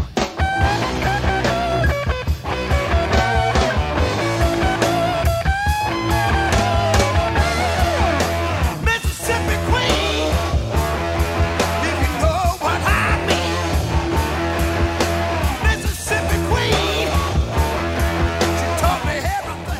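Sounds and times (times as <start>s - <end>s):
driving distorted electric guitar: 0.0s - 19.7s
steady pounding drums: 0.0s - 19.7s
strained shouting male vocal in a hard rock song: 6.2s - 8.2s, 8.8s - 10.5s, 11.8s - 13.7s, 15.6s - 17.4s, 18.5s - 19.7s.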